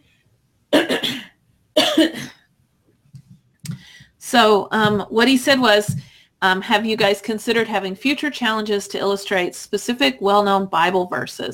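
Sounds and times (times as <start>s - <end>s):
coughing: 0.7s - 2.5s
quiet breathing: 3.6s - 4.2s, 6.0s - 6.4s
speech: 4.3s - 11.5s.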